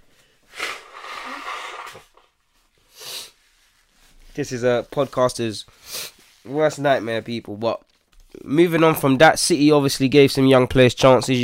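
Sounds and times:
person blowing nose forcefully: 0.2s - 3.7s, 5.8s - 6.4s
speech: 4.4s - 5.8s, 6.4s - 11.4s.

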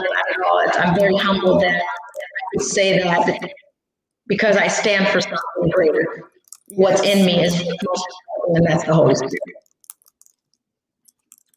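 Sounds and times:
speech: 0.4s - 3.6s, 4.3s - 9.7s
typing on a computer keyboard: 6.4s - 6.8s, 9.6s - 11.5s.

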